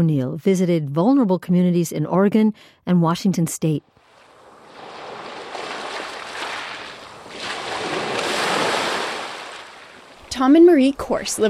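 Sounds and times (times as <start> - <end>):
speech: 0.0 - 4.0, 10.4 - 11.4
surf washing onto a beach: 4.0 - 10.7.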